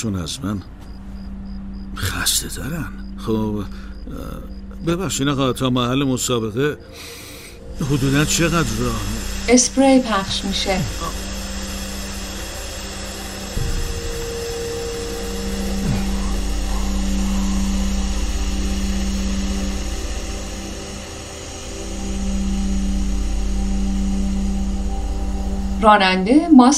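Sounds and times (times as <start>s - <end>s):
speech: 0.0s - 0.9s, 2.0s - 11.2s, 25.8s - 26.7s
van engine humming as the van drives off: 0.0s - 26.7s.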